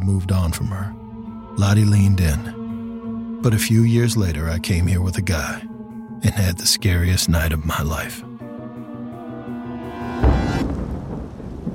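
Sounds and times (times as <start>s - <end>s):
speech: 0.1s - 1.0s, 1.6s - 2.6s, 3.4s - 8.3s
thunderclap rumbling during a summer storm in Flagstaff: 10.2s - 11.7s.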